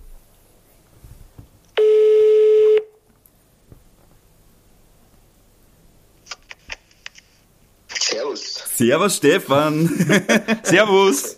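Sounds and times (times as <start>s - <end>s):
electronic telephone tone: 1.8s - 2.9s
speech: 8.4s - 11.3s
laughter: 9.8s - 11.2s.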